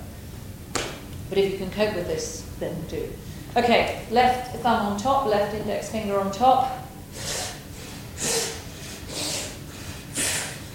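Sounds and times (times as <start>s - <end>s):
speech: 1.3s - 7.3s
breathing in through the mouth and out through the nose: 7.1s - 10.7s.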